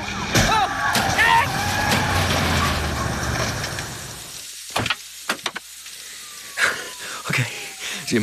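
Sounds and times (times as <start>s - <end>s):
car engines roaring in a high-speed police chase of a 1975 Ford Thunderbird: 0.0s - 4.3s
police cars crashing into each other: 0.0s - 4.9s.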